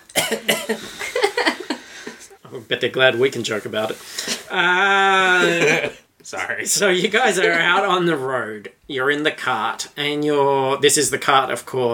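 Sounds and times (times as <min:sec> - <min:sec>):
asthmatic cough: 0:00.1 - 0:01.6
speech: 0:00.3 - 0:01.2, 0:02.5 - 0:11.9
laughter: 0:00.8 - 0:02.3, 0:05.3 - 0:06.0, 0:06.7 - 0:08.1.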